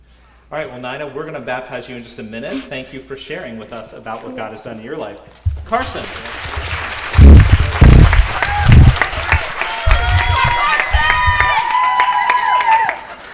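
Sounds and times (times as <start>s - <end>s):
speech: 0.5s - 6.4s
heavy thumps: 5.4s - 5.9s, 7.2s - 9.0s
room full of people clapping: 5.6s - 13.3s
room full of people cheering and whooping: 7.1s - 13.3s.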